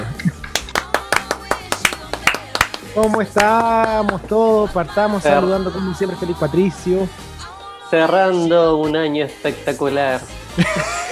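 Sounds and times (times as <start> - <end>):
few people clapping hands: 0.2 - 4.4
speech: 3.0 - 7.3, 7.9 - 11.0
laughter: 10.5 - 11.1.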